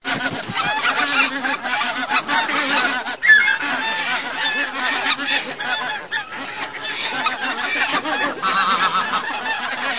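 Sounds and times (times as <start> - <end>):
bird calling: 0.0 - 9.9.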